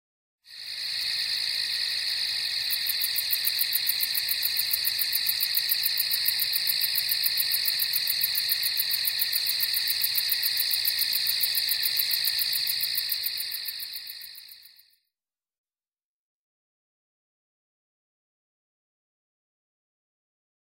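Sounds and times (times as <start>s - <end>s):
crickets chirping: 0.5s - 15.0s.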